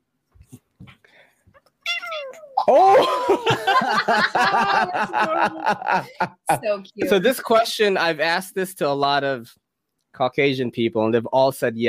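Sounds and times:
female cat meowing: 1.8 - 2.8
speech: 2.6 - 11.8
laughter: 2.7 - 7.5.

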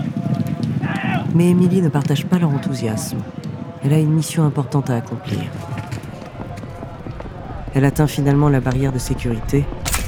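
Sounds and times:
galloping horse hoofbeats during a horse race: 0.0 - 3.8, 5.3 - 8.9
dense noisy background: 0.0 - 10.0
speech: 1.4 - 5.8, 7.7 - 9.8.

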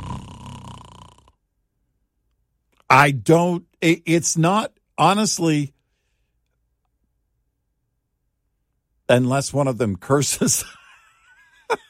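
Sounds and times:
person imitating a buzzy rattling snore: 0.0 - 1.4
speech: 2.9 - 5.8, 9.1 - 10.8.

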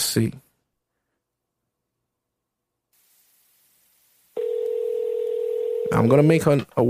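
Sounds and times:
speech: 0.2 - 0.4, 6.0 - 6.8
outgoing phone call ringing tone: 4.4 - 6.2.

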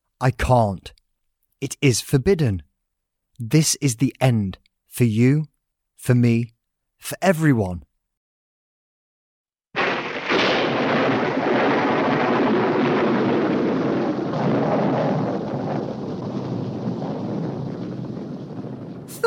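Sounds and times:
speech: 0.2 - 1.0, 1.6 - 2.7, 3.4 - 7.9
lightning crack and heavy roaring thunder rumble: 9.8 - 19.2.

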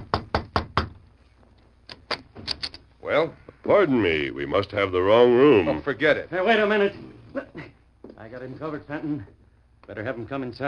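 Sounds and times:
knocking on a wooden room door in a hallway: 0.0 - 1.0
speech: 3.1 - 7.6, 8.3 - 10.6.

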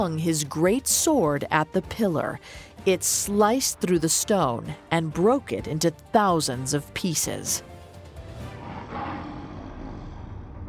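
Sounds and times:
speech: 0.0 - 7.7
lion roaring: 8.2 - 10.6.

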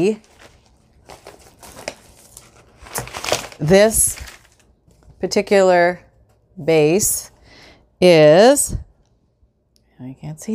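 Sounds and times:
speech: 0.0 - 0.3, 3.6 - 4.3, 5.2 - 6.0, 6.6 - 7.3, 8.0 - 8.8, 10.0 - 10.5
paper crinkling and rustling as material is folded by hand for bookbinding: 0.0 - 5.2.

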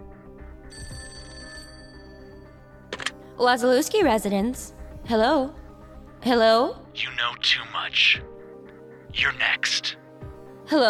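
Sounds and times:
home telephone ringing with an electronic trill: 0.7 - 3.1
speech: 3.4 - 5.6, 6.2 - 8.3, 9.2 - 10.0, 10.7 - 10.8.

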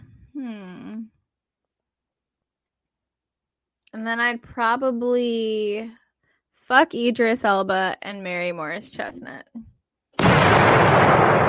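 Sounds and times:
speech: 3.9 - 6.0, 6.7 - 9.7
gunshot sound effect: 10.2 - 11.4.

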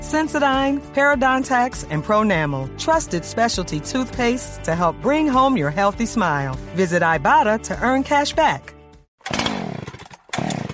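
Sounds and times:
speech: 0.1 - 9.4
small chainsaw engine starting and revving: 9.2 - 10.7.

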